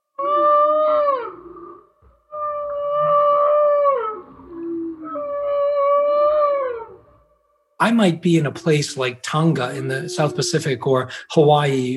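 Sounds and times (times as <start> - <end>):
male humpback whale singing long tonal moaning units: 0.2 - 7.4, 9.6 - 10.9
speech: 7.8 - 11.9.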